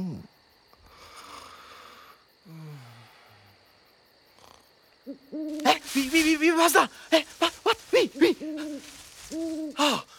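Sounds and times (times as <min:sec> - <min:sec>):
owl hooting: 0:05.0 - 0:10.1
speech: 0:05.1 - 0:10.1.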